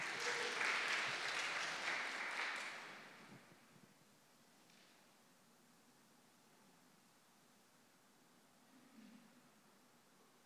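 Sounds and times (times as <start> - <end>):
congregation applauding: 0.0 - 3.4.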